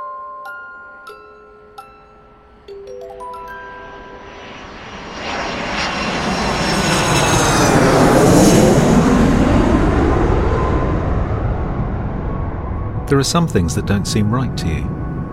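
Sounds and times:
airplane engine roar during landing: 0:03.3 - 0:15.3
speech: 0:13.1 - 0:15.0.

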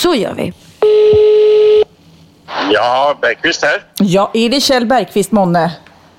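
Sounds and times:
speech: 0:00.0 - 0:00.6, 0:02.7 - 0:05.8
telephone ringing tone: 0:00.8 - 0:01.9.

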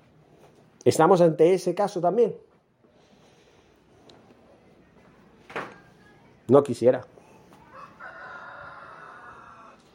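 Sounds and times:
speech: 0:00.8 - 0:02.5, 0:06.5 - 0:07.2
rooster crowing: 0:07.6 - 0:09.9.

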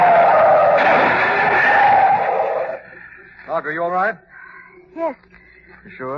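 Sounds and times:
car tires screeching as a car swerves on a road: 0:00.0 - 0:02.8
speech: 0:03.6 - 0:06.1.

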